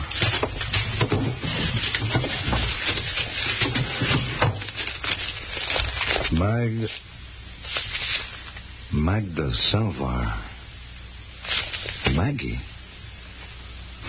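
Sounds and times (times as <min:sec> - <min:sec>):
papers on a prisoner rustling and crinkling as handled: 0:00.0 - 0:07.0, 0:07.6 - 0:08.6, 0:11.4 - 0:12.2
speech: 0:06.5 - 0:07.1, 0:09.1 - 0:10.4, 0:12.2 - 0:12.7.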